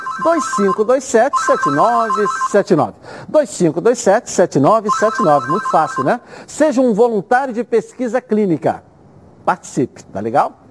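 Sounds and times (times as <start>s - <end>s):
telephone ringing with electronic tone: 0.0s - 2.7s, 4.9s - 6.2s
person talking loudly: 0.1s - 7.0s
speech: 0.2s - 8.9s, 9.5s - 10.6s.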